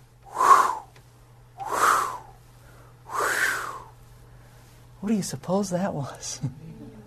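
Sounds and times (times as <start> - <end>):
voice imitating raven wingbeats as breathy whooshes: 1.6 - 2.4, 3.1 - 3.9
speech: 5.0 - 6.8.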